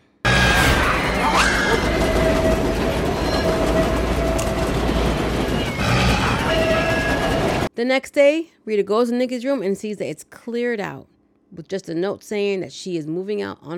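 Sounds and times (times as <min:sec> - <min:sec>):
train high metallic squeals: 0:00.3 - 0:07.7
train passing: 0:00.3 - 0:07.7
speech: 0:07.8 - 0:13.7.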